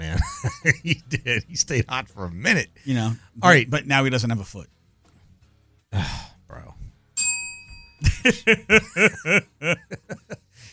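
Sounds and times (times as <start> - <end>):
breathy snicker: 0.0 - 1.5, 8.0 - 10.6
rhythmic laughter: 0.0 - 1.9, 8.0 - 10.6
speech: 0.4 - 4.8, 5.9 - 6.8, 8.0 - 10.4
single bright bell ding: 7.2 - 8.1.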